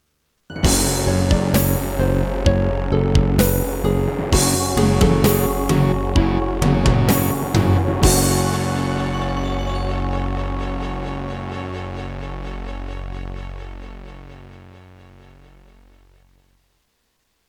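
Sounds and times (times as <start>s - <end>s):
synthesizer module introduction: 0.5s - 15.6s.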